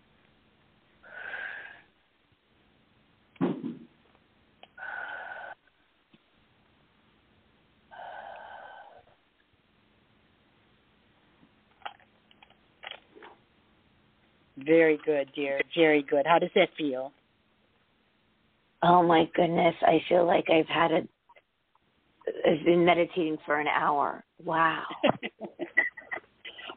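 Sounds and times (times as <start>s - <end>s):
slow deep breaths during a guided meditation: 1.0s - 2.0s, 4.8s - 5.8s, 7.9s - 9.2s
speech: 14.6s - 17.2s, 18.8s - 21.1s, 22.5s - 25.2s.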